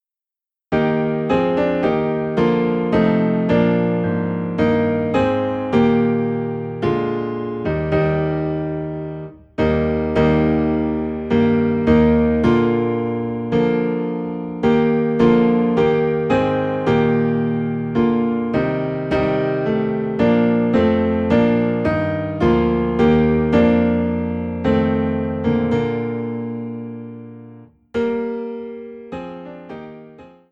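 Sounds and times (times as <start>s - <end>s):
low piano in E flat: 0.7s - 30.5s.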